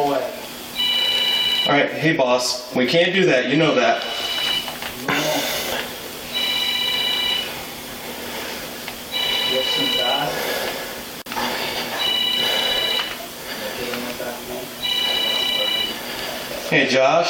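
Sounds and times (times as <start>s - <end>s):
steady hum: 0.0s - 17.2s
telephone with trilling electronic ring: 0.8s - 1.9s, 4.0s - 4.8s, 6.3s - 7.6s, 9.1s - 10.3s, 11.9s - 13.2s, 14.8s - 16.0s
speech: 1.7s - 4.4s, 16.8s - 17.2s.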